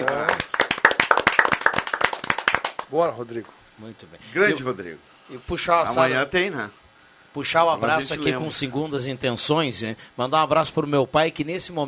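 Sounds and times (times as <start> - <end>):
several people clapping in applause: 0.0 - 2.9
speech: 2.9 - 6.8, 7.4 - 11.8.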